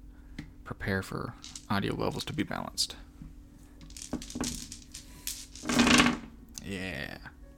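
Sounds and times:
speech: 0.7 - 3.1, 6.7 - 7.3
dice clattering as they are taken out: 1.4 - 2.4, 3.8 - 6.3.

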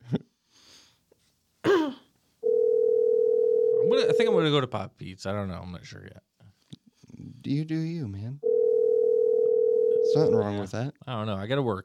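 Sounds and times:
electronic phone ringing tone on an outgoing call: 2.4 - 4.4, 8.4 - 10.6
speech: 4.2 - 6.3, 7.4 - 8.4, 10.1 - 11.8.

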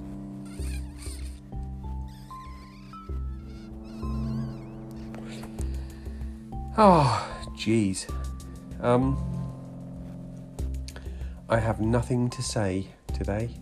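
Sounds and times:
sustained musical tones: 0.0 - 12.7
small cat meowing: 0.3 - 5.4
speech: 6.8 - 8.2, 8.8 - 9.4, 11.5 - 13.6.

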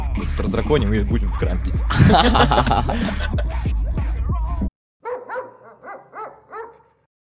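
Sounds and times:
speech: 0.2 - 3.6
laughter: 1.9 - 3.7
dogs barking: 5.0 - 7.1.

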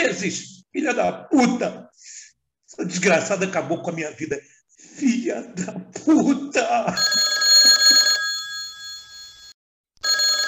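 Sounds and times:
speech: 0.1 - 2.2, 2.8 - 8.0
telephone at a suicide prevention helpline ringing: 7.0 - 10.4.

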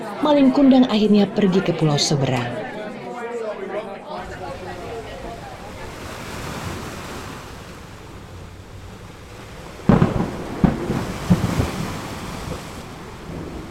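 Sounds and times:
speech: 0.2 - 2.7
crashing surf from a storm at sea: 4.2 - 13.6
stormy wind from a storm at sea: 4.2 - 13.6
sharp loud thunder-like cracks: 9.4 - 13.6.

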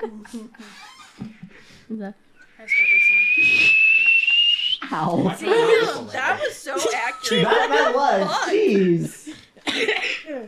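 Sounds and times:
laughter: 0.0 - 1.6, 3.7 - 9.3
speech: 0.0 - 3.8, 4.9 - 10.4
high-pitched whistle like a tea kettle: 2.6 - 4.9.

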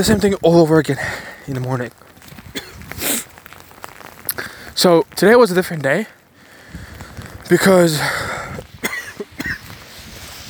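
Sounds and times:
speech: 0.0 - 2.1, 4.8 - 6.9, 7.5 - 8.4
person coughing: 2.5 - 3.2, 8.8 - 9.6.

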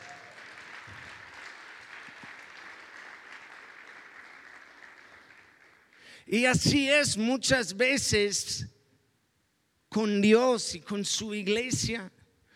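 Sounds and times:
crowd applause from many hands: 0.0 - 6.1
speech: 6.2 - 8.7, 10.0 - 12.2.

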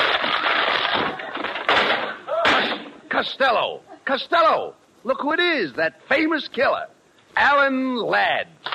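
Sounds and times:
door being smashed through by someone walking through it: 0.0 - 3.0
speech: 3.2 - 8.6.

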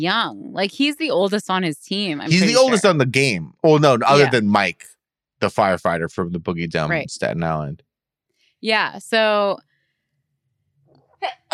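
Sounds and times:
speech: 0.0 - 7.9, 8.6 - 9.7, 11.2 - 11.5
laughter: 2.2 - 4.8, 5.4 - 7.7
sneeze: 2.3 - 2.8.

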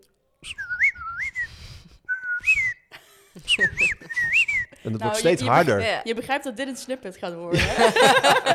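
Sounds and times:
person whistling a birdsong imitation: 0.4 - 2.9, 3.5 - 4.8
laughter: 2.9 - 5.8, 7.5 - 8.5
speech: 3.6 - 8.5.

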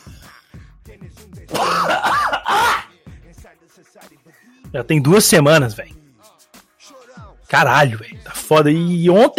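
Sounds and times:
person clearing throat: 1.5 - 2.9
person coughing harshly: 1.5 - 2.9
speech: 4.7 - 5.9, 7.5 - 9.3.

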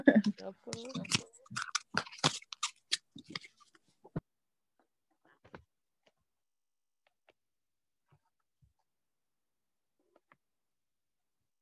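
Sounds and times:
person speaking: 0.0 - 1.6
shuffling a deck of oracle cards: 0.7 - 3.8.

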